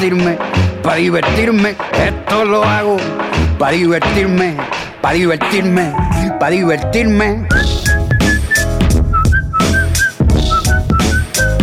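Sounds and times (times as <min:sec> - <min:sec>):
loud busy music with a steady beat: 0:00.0 - 0:06.6, 0:07.5 - 0:11.6
speech: 0:00.0 - 0:07.7
person whistling a high melody of short repeated notes: 0:07.5 - 0:11.6.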